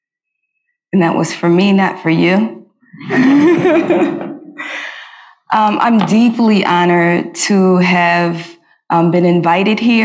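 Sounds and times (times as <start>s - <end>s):
speech: 0.9s - 4.2s, 5.5s - 10.0s
laughter: 3.0s - 4.9s
deep breath in and out: 4.6s - 5.5s.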